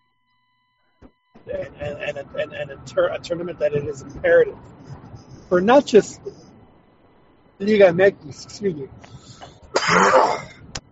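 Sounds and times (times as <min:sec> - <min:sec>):
speech: 0:01.5 - 0:04.8, 0:05.5 - 0:06.4, 0:07.6 - 0:10.5
person sneezing: 0:09.8 - 0:10.5.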